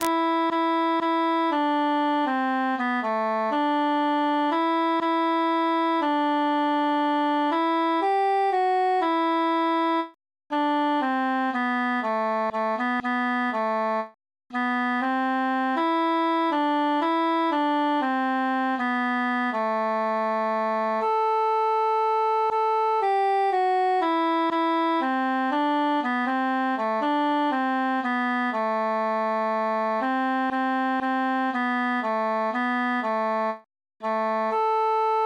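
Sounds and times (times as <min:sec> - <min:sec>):
transposed tenor solo: 0:00.0 - 0:35.2.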